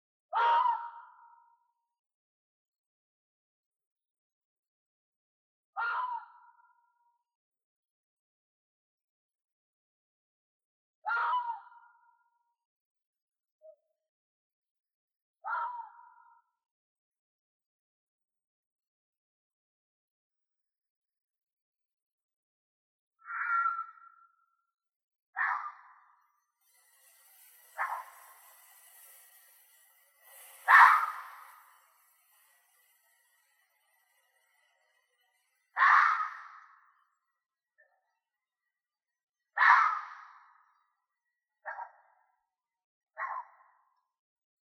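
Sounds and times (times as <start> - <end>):
fox: 0.3 - 1.5, 5.8 - 6.8, 11.0 - 12.2, 15.4 - 16.4, 23.2 - 24.5, 25.4 - 26.1, 27.8 - 28.1, 30.6 - 31.4, 35.7 - 36.8, 39.6 - 40.6, 41.6 - 42.2, 43.2 - 43.8.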